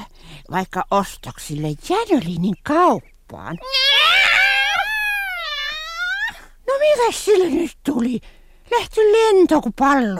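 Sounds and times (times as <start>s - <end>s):
speech: 0.5s - 4.0s, 6.8s - 10.1s
loud panicked screaming cry: 3.6s - 6.4s.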